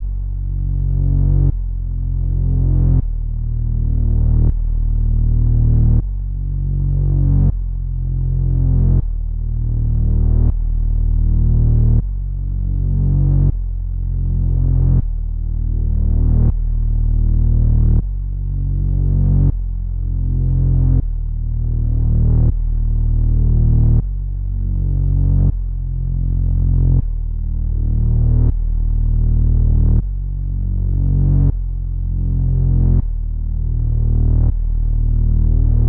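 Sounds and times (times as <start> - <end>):
80 BPM A sharp minor lofi bass melody loop: 0.0 - 35.8.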